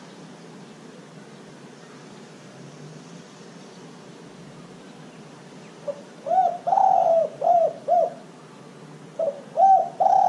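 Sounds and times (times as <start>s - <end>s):
dove cooing: 5.8s - 8.3s, 9.2s - 10.2s.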